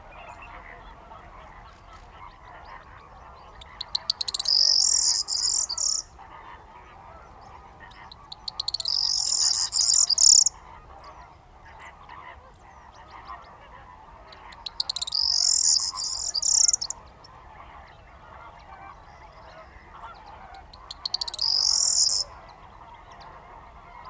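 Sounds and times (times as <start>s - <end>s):
steady dense murmur of bird calls in the Camargue: 0.0s - 24.0s
corn bunting Emberiza calandra singing in reeds in the Camargue: 3.2s - 11.2s, 13.6s - 17.5s, 20.3s - 23.4s.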